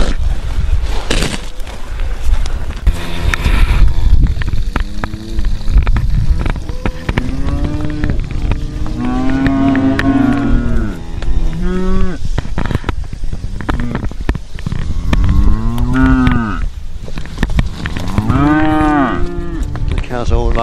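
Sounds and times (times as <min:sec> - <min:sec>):
rustling: 0:00.0 - 0:20.6
wind: 0:00.0 - 0:20.6
young cattle mooing: 0:06.3 - 0:12.2, 0:15.0 - 0:16.6, 0:18.0 - 0:19.8.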